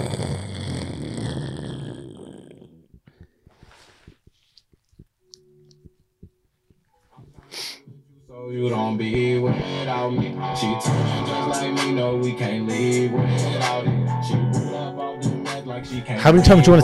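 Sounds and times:
voice imitating heavy snoring with a rattling snort: 0.0 - 4.3
speech: 8.5 - 15.0, 15.8 - 16.8.

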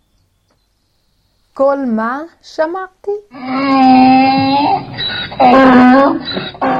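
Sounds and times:
speech: 1.6 - 6.7
person imitating donkey bray: 3.3 - 6.7.

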